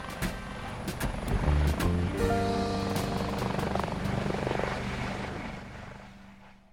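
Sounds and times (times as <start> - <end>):
helicopter rotor thumping and whirring: 0.0 - 2.1, 2.7 - 5.6
helicopter engine drone powering up: 0.1 - 6.5.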